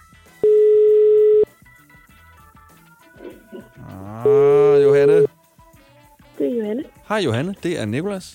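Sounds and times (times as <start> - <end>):
soft music: 0.0 - 8.3
telephone ringback tone while placing a call: 0.4 - 1.5, 4.2 - 5.3
speech: 7.1 - 8.3.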